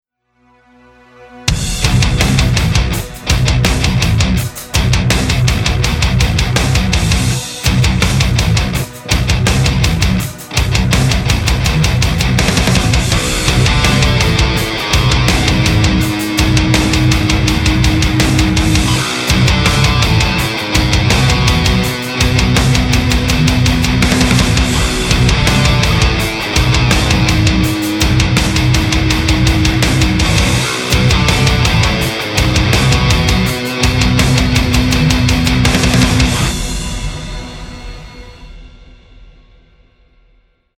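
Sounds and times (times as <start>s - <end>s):
music: 0.0s - 40.7s.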